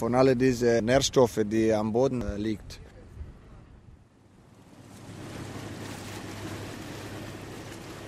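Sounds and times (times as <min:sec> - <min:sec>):
speech: 0:00.0 - 0:02.8
wind on the Danube riverside: 0:00.0 - 0:08.0
low engine-like hum: 0:03.0 - 0:08.0
rushing water on the middle arm of the Danube: 0:04.4 - 0:08.0.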